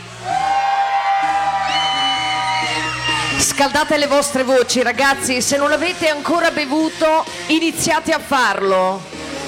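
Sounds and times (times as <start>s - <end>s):
large crowd yelling together on a count in Corinaldo Italy: 0.2s - 3.4s
speech: 3.6s - 9.1s.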